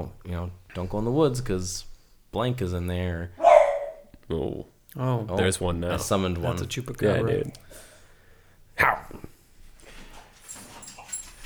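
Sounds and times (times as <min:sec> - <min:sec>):
speech: 0:00.0 - 0:03.4, 0:04.3 - 0:07.9, 0:08.8 - 0:09.2
dog barking with high yipping calls and whines: 0:03.4 - 0:04.2.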